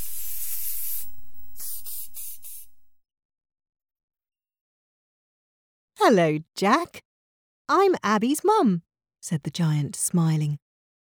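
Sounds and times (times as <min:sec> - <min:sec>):
hosepipe spraying water: 0:00.0 - 0:02.6
speech: 0:06.1 - 0:07.1, 0:07.7 - 0:10.6.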